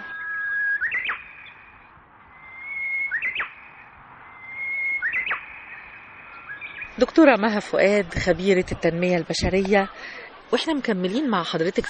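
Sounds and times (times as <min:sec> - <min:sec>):
bird whistled call in a nature reserve: 0:00.0 - 0:07.0
speech: 0:07.0 - 0:11.8.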